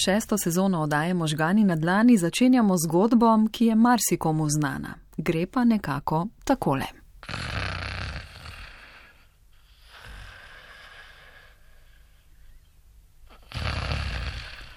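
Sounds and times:
speech: 0.0s - 7.6s
person snoring loudly: 7.2s - 12.1s, 13.3s - 14.7s
quieter breathing of a sleeping person: 8.6s - 13.5s.

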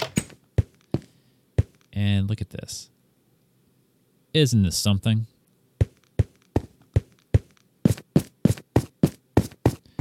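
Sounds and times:
door opening: 0.0s - 0.4s
dull thumps of footsteps passing through a door: 0.2s - 1.8s, 5.8s - 10.0s
speech: 2.0s - 3.0s, 4.4s - 5.3s.

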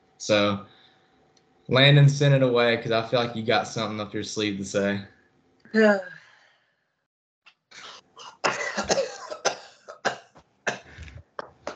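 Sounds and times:
speech: 0.2s - 0.7s, 1.7s - 6.2s
man clearing his throat with rough guttural hacks and coughs: 7.8s - 11.1s.

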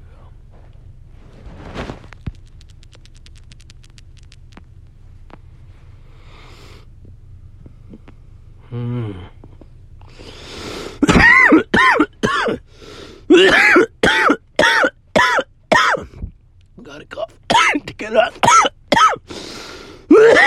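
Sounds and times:
speech: 8.7s - 9.2s
harsh raspy coughing from person smoking a joint: 11.0s - 12.6s, 13.3s - 16.2s, 17.5s - 19.3s, 20.1s - 20.4s.

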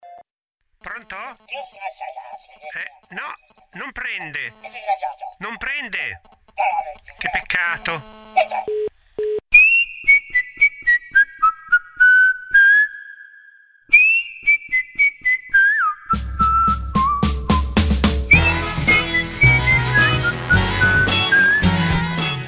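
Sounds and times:
speech: 0.8s - 8.9s
whistled melody of a show theme tune: 9.5s - 22.4s
show opening theme tune with drums and bass: 16.2s - 22.4s.

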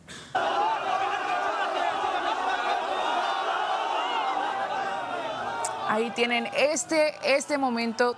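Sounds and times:
large crowd shouting: 0.4s - 8.1s
laughter: 0.4s - 8.1s
speech: 6.0s - 8.1s.

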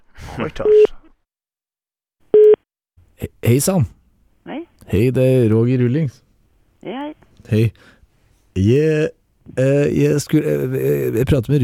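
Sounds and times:
speech: 0.4s - 0.9s, 3.4s - 6.2s, 6.8s - 8.0s, 8.6s - 11.6s
telephone beep during a phone call: 2.3s - 2.6s.

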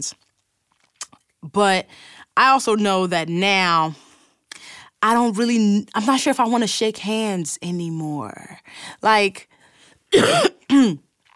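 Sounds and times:
speech: 0.0s - 0.3s, 1.4s - 4.0s, 5.0s - 11.1s
person coughing: 10.1s - 11.0s.

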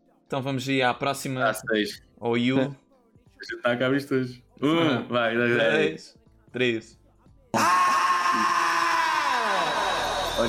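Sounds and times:
speech: 0.3s - 2.8s, 3.4s - 7.0s
man screaming in a played track: 7.5s - 10.4s.

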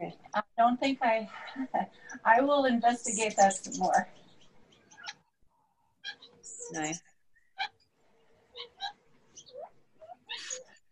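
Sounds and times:
birds chirping outdoors: 0.0s - 10.8s
speech: 0.1s - 4.2s, 6.7s - 7.1s.

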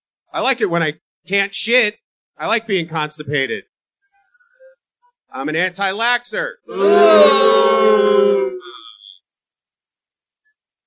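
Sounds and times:
speech: 0.3s - 3.7s, 5.3s - 8.8s
crowd booing: 6.7s - 8.9s
brief higher-pitched voice: 6.7s - 9.0s.

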